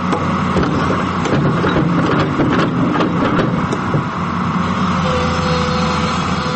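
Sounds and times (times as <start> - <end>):
heavy diesel excavator engine rumbling while digging: 0.0 - 6.5
excavator clanking and scraping while scooping loose soil: 0.1 - 4.1.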